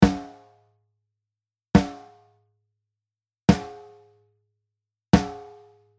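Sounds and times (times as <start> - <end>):
snare drum: 0.0 - 0.3, 1.8 - 2.1, 3.5 - 3.8, 5.2 - 5.6.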